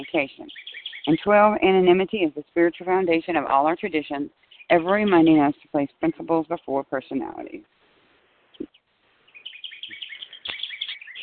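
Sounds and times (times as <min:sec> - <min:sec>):
bird chirping: 0:00.0 - 0:02.0, 0:04.2 - 0:05.8, 0:08.5 - 0:11.2
speech: 0:00.0 - 0:07.8.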